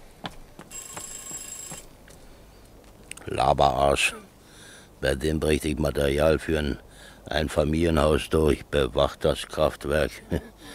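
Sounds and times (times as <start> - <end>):
faint telephone ringing with a high trill: 0.7 - 2.0
speech: 3.3 - 4.3, 5.0 - 10.7.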